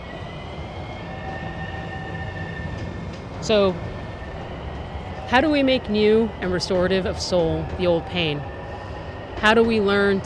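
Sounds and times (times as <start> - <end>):
Metrorail train wheels roaring on track at Arlington Heights: 0.0 - 10.2
speech: 3.4 - 3.9, 5.3 - 8.5, 9.4 - 10.2.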